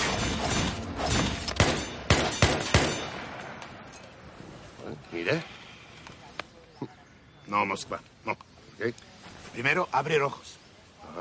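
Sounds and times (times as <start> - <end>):
gunshots during outdoor shooting practice at a country house: 0.0 - 3.6
speech: 5.3 - 5.5, 7.5 - 11.1.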